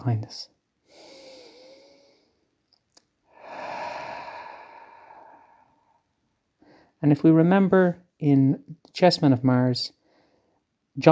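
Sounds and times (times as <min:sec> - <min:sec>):
speech: 0:00.0 - 0:01.1, 0:07.0 - 0:10.0
slow deep breath: 0:00.8 - 0:02.5, 0:03.3 - 0:07.0.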